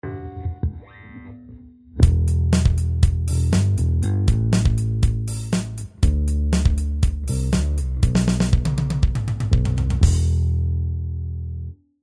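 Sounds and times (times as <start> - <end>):
bass guitar with full added sustain: 0.1 - 11.8.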